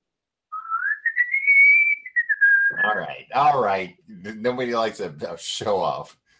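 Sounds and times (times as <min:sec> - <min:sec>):
person whistling a sustained wavering note: 0:00.6 - 0:03.0
speech: 0:03.0 - 0:06.2.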